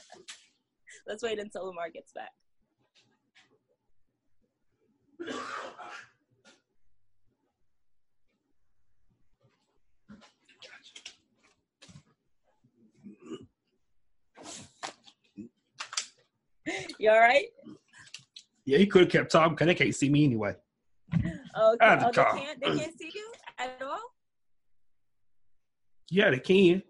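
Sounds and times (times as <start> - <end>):
speech: 1.1 - 2.4, 17.0 - 17.6, 18.7 - 23.1, 26.1 - 26.8
man coughing: 5.2 - 6.0, 21.8 - 22.9.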